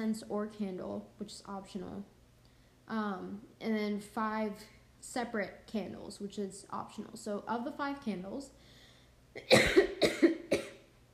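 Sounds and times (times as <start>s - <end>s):
speech: 0.0s - 2.2s, 2.9s - 8.7s, 9.4s - 10.4s
person coughing: 9.4s - 10.9s.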